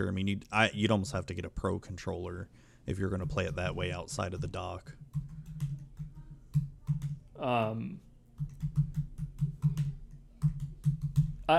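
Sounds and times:
speech: 0.0s - 5.3s, 7.4s - 8.0s
typing on a computer keyboard: 5.0s - 7.2s, 8.4s - 11.4s.

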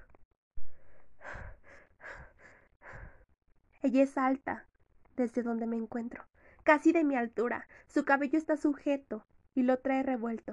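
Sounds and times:
quick heavy breathing: 0.6s - 3.3s
speech: 3.8s - 10.5s.

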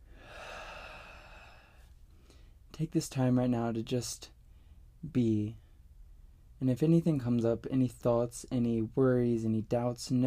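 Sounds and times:
deep breath in and out: 0.0s - 2.6s
speech: 2.8s - 4.4s, 5.0s - 5.6s, 6.6s - 10.2s.

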